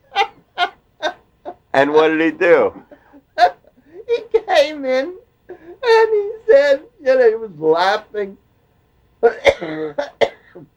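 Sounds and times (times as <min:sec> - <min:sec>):
speech: 0:01.8 - 0:02.8, 0:04.8 - 0:05.2, 0:05.8 - 0:08.4, 0:09.2 - 0:10.7
person coughing harshly: 0:09.2 - 0:10.7.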